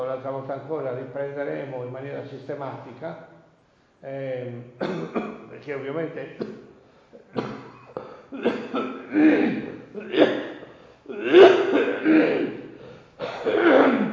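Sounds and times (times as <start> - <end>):
speech: 0.2 - 3.3, 4.0 - 6.7, 8.3 - 10.3
harsh coughing during a guided meditation session: 4.8 - 5.6, 6.2 - 14.1.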